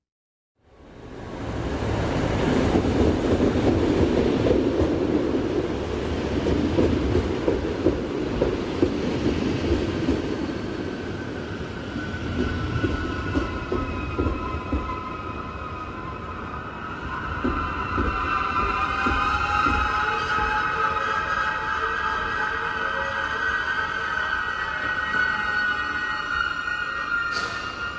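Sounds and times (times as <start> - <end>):
express train arriving at a large city station: 1.0 - 27.9
high squealing tones of an arriving express train: 11.0 - 27.9.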